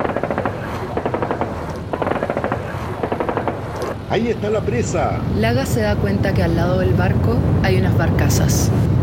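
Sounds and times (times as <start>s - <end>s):
overheated aircraft machine guns firing on their own: 0.0s - 4.0s
speech: 4.1s - 8.9s.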